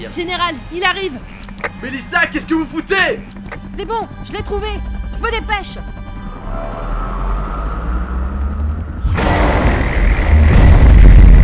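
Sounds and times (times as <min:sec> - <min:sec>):
speech: 0:00.0 - 0:06.9
explosions under enemy fire: 0:09.0 - 0:11.4.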